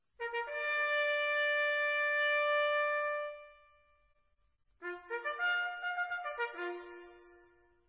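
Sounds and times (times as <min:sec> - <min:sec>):
horn: 0:00.1 - 0:03.9, 0:04.8 - 0:07.8.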